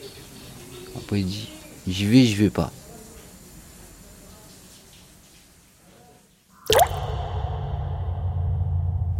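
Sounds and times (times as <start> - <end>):
speech: 1.0 - 2.8
water drip in old public shower baths in Lyon: 6.6 - 8.0
steady low hum: 6.6 - 9.1.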